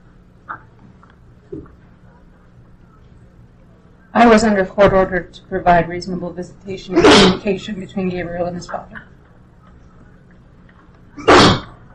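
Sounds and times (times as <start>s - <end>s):
speech: 4.2s - 9.1s
person sneezing: 6.9s - 7.4s, 11.2s - 11.7s.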